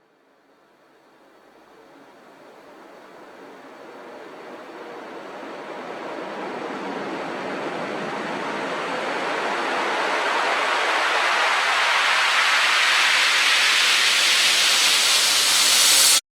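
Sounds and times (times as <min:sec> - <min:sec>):
rising uplifter effect: 0:07.3 - 0:16.2.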